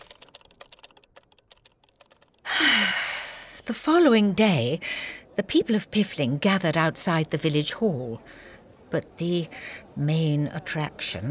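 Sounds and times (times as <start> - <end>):
typewriter keys clattering: 0.0 - 2.5
speech: 3.7 - 11.2.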